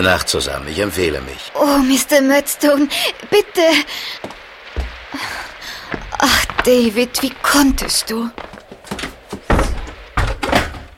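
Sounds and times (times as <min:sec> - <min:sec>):
speech: 0:00.0 - 0:04.4, 0:06.2 - 0:08.5
door slamming shut: 0:09.5 - 0:10.9.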